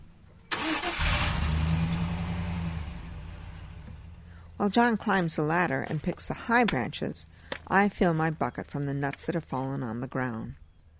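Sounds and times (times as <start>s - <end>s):
pickup truck engine starting and running: 0.5s - 4.6s
speech: 4.6s - 10.6s.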